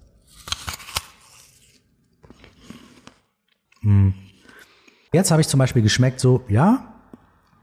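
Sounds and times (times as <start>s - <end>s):
person biting into an apple: 0.0s - 3.8s
speech: 5.1s - 6.9s.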